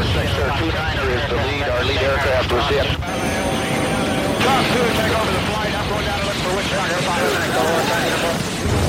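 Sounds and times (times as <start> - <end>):
engine and rotor noise of helicopters flying under heavy fire, heard over radios: 0.0 - 8.8
garbled radio-style voices talking: 0.0 - 8.8.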